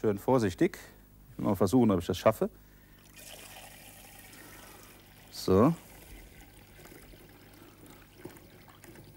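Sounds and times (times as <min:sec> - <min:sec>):
speech: 0:00.0 - 0:02.7, 0:05.5 - 0:05.8
liquid brewing mixture poured through a funnel into a bottle: 0:03.0 - 0:09.1.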